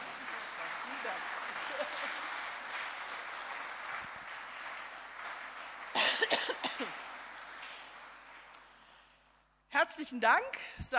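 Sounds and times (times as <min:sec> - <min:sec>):
audience applause: 0:00.0 - 0:09.2
cough in the audience: 0:05.9 - 0:07.0
speech: 0:10.0 - 0:10.9.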